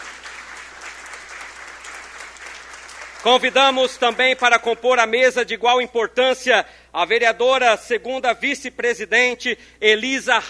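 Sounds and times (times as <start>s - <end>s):
audience applause at a municipal council ceremony: 0.0s - 4.4s
speech: 3.2s - 10.4s.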